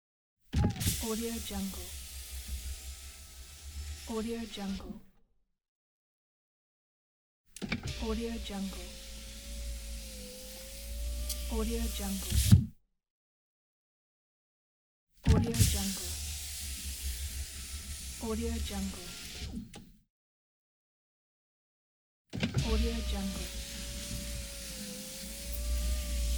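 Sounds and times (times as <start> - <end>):
car window: 0.6 - 5.0, 7.6 - 12.6, 15.4 - 19.8, 22.4 - 26.3.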